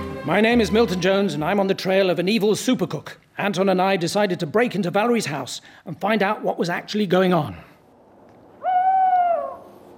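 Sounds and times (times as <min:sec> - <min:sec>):
faint hiss: 0:00.0 - 0:09.9
speech: 0:00.2 - 0:07.7
owl hooting in the daytime: 0:08.6 - 0:09.9.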